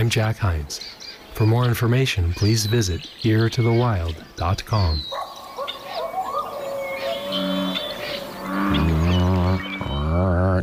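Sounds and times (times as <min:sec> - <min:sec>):
speech: 0:00.0 - 0:05.2, 0:10.2 - 0:10.6
birdsong chirping: 0:00.0 - 0:10.6
American bullfrog calls in Sonoma County: 0:05.1 - 0:10.3.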